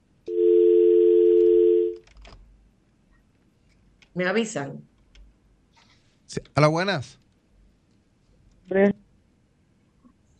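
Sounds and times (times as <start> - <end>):
telephone call tone: 0.3 - 2.0
speech: 4.2 - 4.9, 6.3 - 7.2, 8.7 - 9.0.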